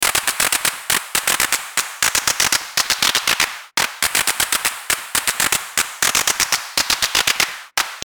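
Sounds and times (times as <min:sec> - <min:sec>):
drum synth clap with clip automation: 0:00.0 - 0:08.0.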